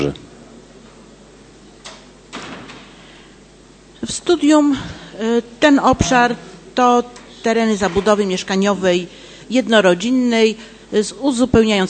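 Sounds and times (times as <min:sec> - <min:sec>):
speech: 0:00.0 - 0:00.2, 0:04.0 - 0:11.8
quiet hum: 0:00.0 - 0:11.8
doors to neighbouring rooms of a meeting hall closing: 0:07.6 - 0:08.4.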